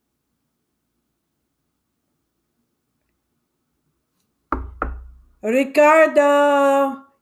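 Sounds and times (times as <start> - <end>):
firm knocking on a door: 4.5 - 5.4
speech: 5.4 - 7.0.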